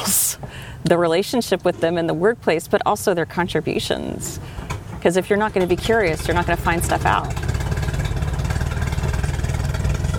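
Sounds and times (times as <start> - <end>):
speech: 0.8 - 7.5
boat bilge pump running: 4.5 - 10.1.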